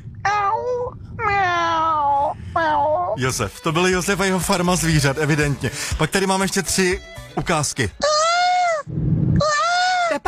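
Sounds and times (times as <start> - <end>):
person imitating a cat meowing: 0.3 - 3.2, 8.0 - 10.2
speech: 3.2 - 8.2.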